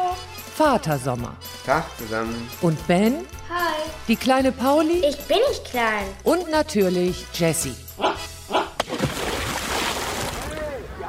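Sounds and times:
speech: 0:00.6 - 0:08.1
child jumping from the edge into a pool: 0:08.8 - 0:10.8
pool water churning and sloshing: 0:08.8 - 0:11.0.

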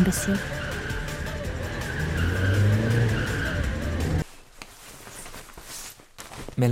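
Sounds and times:
speech: 0:00.0 - 0:00.6, 0:06.6 - 0:06.7
low rumbling car engine: 0:00.0 - 0:04.2
car tires squealing and spinning on ice: 0:00.4 - 0:04.2.

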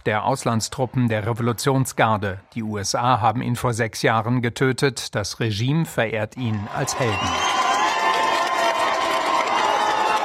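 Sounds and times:
speech: 0:00.0 - 0:07.6
large crowd of protesters in Isfahan Iran cheering and shouting: 0:06.4 - 0:10.2.

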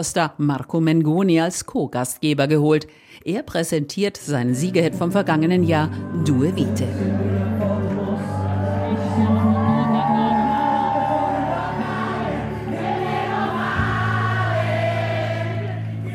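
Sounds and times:
speech: 0:00.0 - 0:07.3
loud live music at a song festival: 0:04.6 - 0:16.1
theater audience at the Ariston Theater in Sanremo cheering and shouting: 0:07.9 - 0:16.1.

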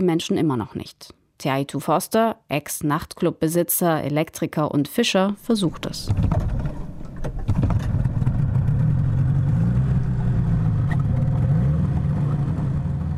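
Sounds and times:
speech: 0:00.0 - 0:06.6
motorboat engine running on a ride out to a small island in Polynesia: 0:06.1 - 0:13.1.

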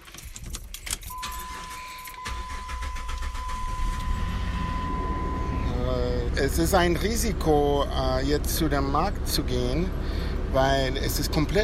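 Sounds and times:
keys jangling: 0:00.0 - 0:02.3
car engine cranking and idling: 0:00.1 - 0:11.6
constant car warning chime tone: 0:01.1 - 0:06.3
speech: 0:06.4 - 0:11.6.

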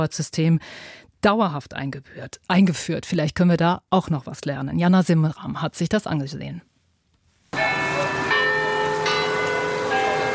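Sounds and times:
speech: 0:00.0 - 0:06.7
carillon bells ringing in a city hall tower: 0:07.6 - 0:10.3.

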